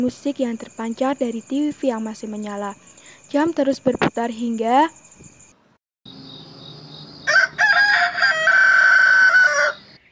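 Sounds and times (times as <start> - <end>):
speech: 0.0 - 5.4
hum of insects or crickets: 0.0 - 10.1
rooster crowing: 7.2 - 10.0.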